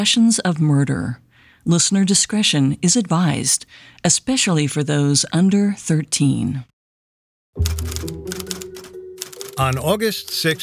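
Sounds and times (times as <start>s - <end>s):
speech: 0.0s - 6.7s, 7.6s - 8.4s, 9.6s - 10.6s
typewriter keystrokes of a clerk transcribing a note: 7.6s - 10.5s.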